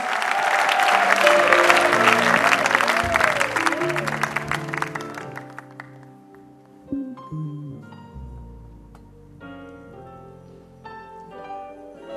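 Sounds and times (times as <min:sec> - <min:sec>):
congregation clapping loudly: 0:00.0 - 0:06.7
keyboard music: 0:01.0 - 0:12.1.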